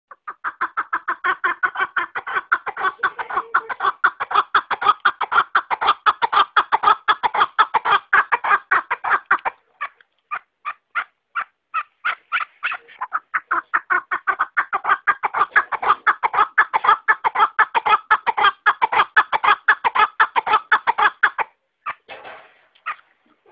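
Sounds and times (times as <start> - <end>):
partridge calling: 0.1 - 22.1.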